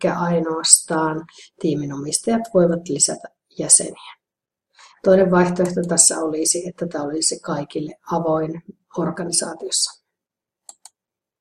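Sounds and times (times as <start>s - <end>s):
speech: 0.0s - 4.2s, 5.0s - 10.0s
computer mouse clicks: 5.6s - 6.0s, 10.6s - 11.0s.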